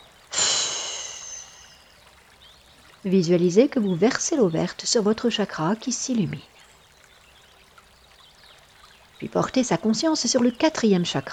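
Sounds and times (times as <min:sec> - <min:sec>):
deep breath during a guided chakra meditation: 0:00.3 - 0:01.8
speech: 0:03.0 - 0:06.5, 0:09.3 - 0:11.3.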